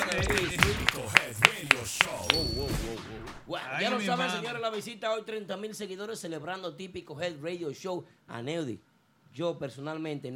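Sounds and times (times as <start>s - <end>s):
crisp hand clapping: 0.0s - 2.7s
speech: 3.6s - 10.3s.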